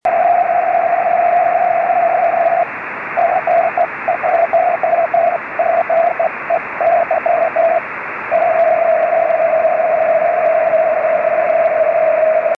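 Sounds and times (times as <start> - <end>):
3cm band CW radio signal: 0.1 - 12.5.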